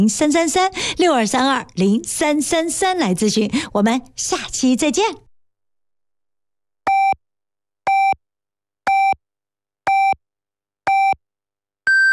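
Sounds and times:
speech: 0.0 - 5.2
radio hourly time signal electronic beeps: 6.9 - 7.2, 7.9 - 8.2, 8.9 - 9.2, 9.9 - 10.2, 11.9 - 12.1.

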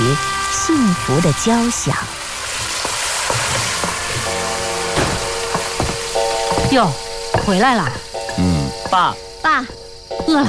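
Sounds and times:
food frying: 0.0 - 10.4
speech: 0.2 - 2.2, 6.7 - 10.4
pots and pans clanking while cooking dinner at home: 2.6 - 9.0.

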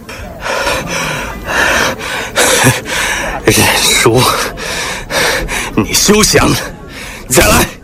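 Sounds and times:
heavy panting after a fight: 0.0 - 5.8
speech: 3.5 - 4.6, 6.0 - 7.7.

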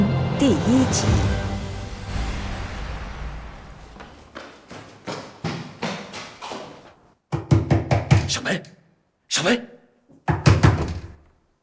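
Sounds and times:
speech: 0.4 - 1.4, 9.4 - 9.7
knocking on a wooden door: 7.3 - 8.3, 10.1 - 11.2.

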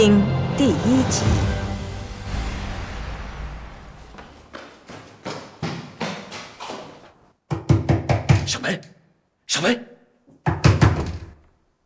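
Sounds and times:
speech: 0.0 - 1.6, 8.7 - 8.9, 9.5 - 10.6
firm knocks on a door: 7.5 - 8.5, 10.3 - 11.4.

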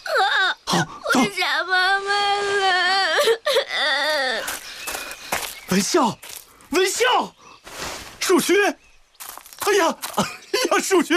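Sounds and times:
child crying: 0.0 - 4.6
speech: 0.7 - 1.9, 5.7 - 7.4, 8.3 - 8.8, 9.7 - 11.1.

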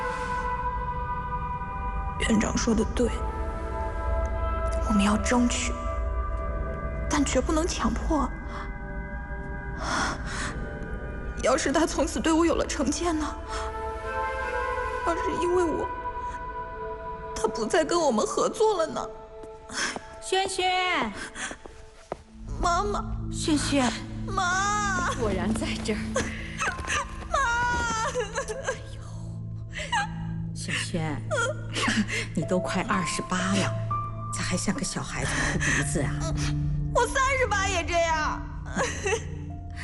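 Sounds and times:
soft sustained music: 0.0 - 39.8
speech: 2.2 - 3.4, 4.9 - 5.8, 7.2 - 8.7, 11.4 - 13.6, 15.1 - 16.0, 17.5 - 19.2, 20.3 - 21.3, 22.6 - 26.4, 32.5 - 33.8, 34.5 - 39.8
woman of nearly 28 crying and sobbing with whimpering wails: 23.6 - 33.8, 35.2 - 39.8.

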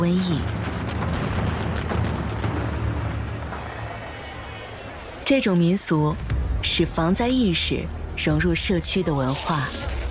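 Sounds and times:
speech: 0.0 - 0.7, 5.3 - 10.0
string of firecrackers exploding along a street during a folk dance ritual: 0.5 - 4.1.

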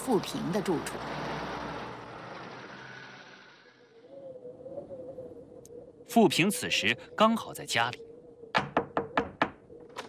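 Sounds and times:
speech: 0.1 - 1.3, 6.1 - 8.1
knocks on a wooden door: 8.6 - 9.6.

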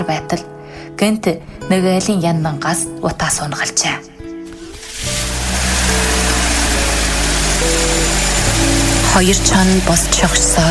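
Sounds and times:
speech: 0.0 - 4.1, 9.2 - 10.6
car engine humming as it approaches a home: 4.5 - 10.6.

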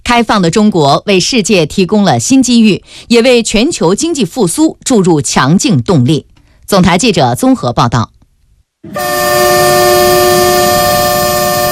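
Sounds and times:
speech: 0.1 - 8.1, 8.8 - 10.7
freight train horn blast: 8.8 - 11.7.

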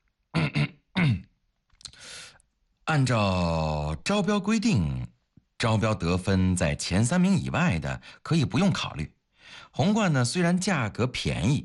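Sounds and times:
man clearing throat with gruff rasps: 0.3 - 1.3
speech: 2.9 - 11.6.

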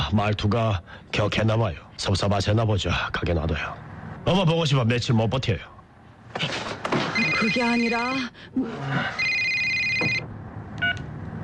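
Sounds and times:
speech: 0.1 - 5.7, 7.2 - 9.4
electronic telephone ring: 7.1 - 7.9, 9.1 - 10.2.

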